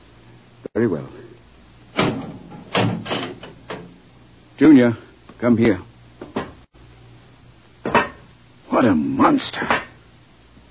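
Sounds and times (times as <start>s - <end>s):
speech: 0.8s - 1.2s, 4.6s - 5.9s, 8.8s - 9.8s
door being opened: 2.0s - 3.9s.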